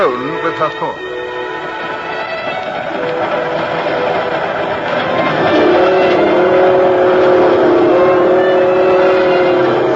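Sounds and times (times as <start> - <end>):
speech: 0.0 - 1.2
local train running late at night near Kansas City: 0.0 - 9.9
sustained tone: 0.0 - 9.9.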